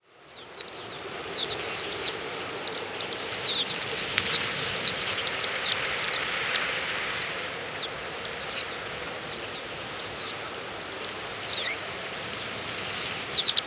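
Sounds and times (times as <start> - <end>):
background hiss: 0.0 - 13.6
horned lark flock calls: 0.1 - 13.6.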